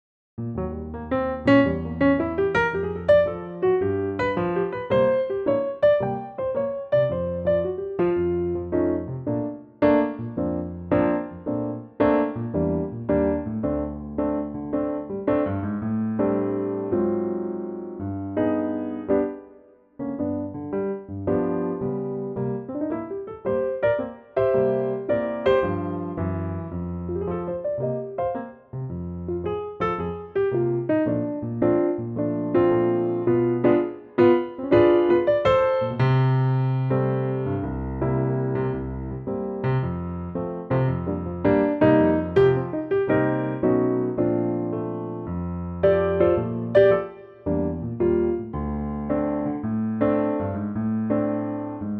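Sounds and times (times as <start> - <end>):
B-flat piano: 0.4 - 51.9.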